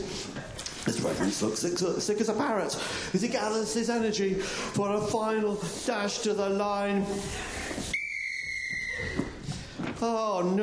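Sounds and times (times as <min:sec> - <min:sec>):
rough noise: 0:00.0 - 0:10.6
speech: 0:01.0 - 0:07.6, 0:10.0 - 0:10.6
referee-style whistle blast marking the end of a race: 0:07.9 - 0:09.3.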